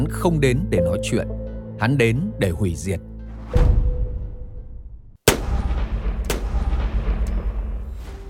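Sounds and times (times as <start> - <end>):
speech: 0.1 - 3.8
loud gunshots: 5.2 - 7.0.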